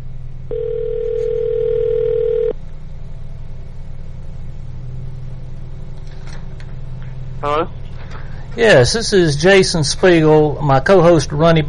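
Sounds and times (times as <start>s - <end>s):
telephone ringback tone on an outgoing call: 0.5s - 2.6s
speech: 8.6s - 11.6s.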